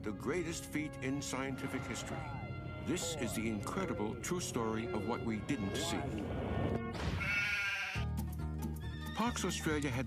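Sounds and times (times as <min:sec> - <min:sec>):
speech: 0:00.0 - 0:07.2, 0:09.3 - 0:10.0
sheep bleating in a long wavering cry: 0:07.2 - 0:08.1.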